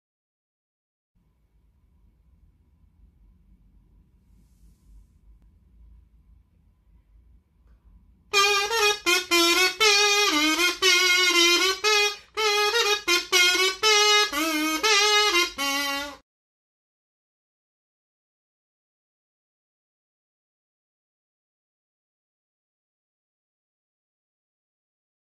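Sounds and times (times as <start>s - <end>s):
kazoo: 8.3s - 16.2s.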